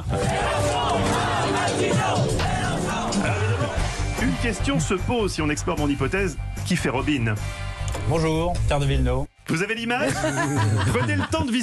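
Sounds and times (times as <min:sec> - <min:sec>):
dense protest crowd yelling and chanting: 0:00.1 - 0:04.0
speech: 0:04.4 - 0:11.6
laughter: 0:10.0 - 0:11.6.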